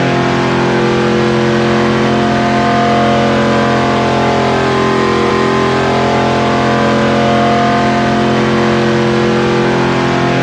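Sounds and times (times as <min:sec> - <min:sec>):
car engine: 0:00.0 - 0:10.4.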